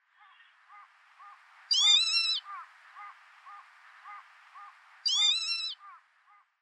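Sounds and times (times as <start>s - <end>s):
northern lapwing in Hyogo: 1.7s - 2.4s, 5.1s - 5.8s.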